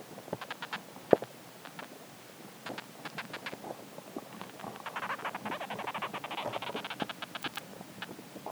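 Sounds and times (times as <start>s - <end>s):
soft hiss: 0.0s - 8.5s
garden ants clicking and rasping in soil: 0.4s - 1.9s, 2.7s - 3.6s, 4.3s - 8.2s.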